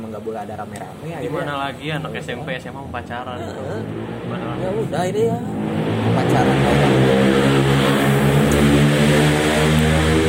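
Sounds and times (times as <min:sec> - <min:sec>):
speech: 0:00.1 - 0:07.6
motorcycle with noisy aftermarket muffler roaring on a street: 0:03.8 - 0:10.2.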